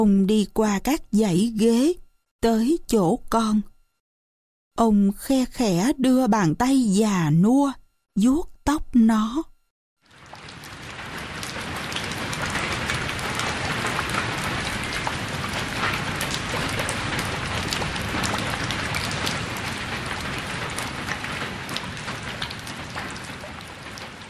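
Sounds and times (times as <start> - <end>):
speech: 0.0 - 3.7, 4.8 - 9.5
rain shower pattering on a roof: 10.0 - 24.2.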